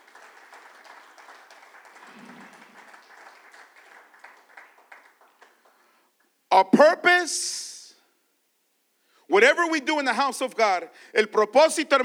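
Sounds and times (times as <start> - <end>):
crowd applauding: 0.0 - 6.0
speech: 6.6 - 7.5, 9.4 - 12.0.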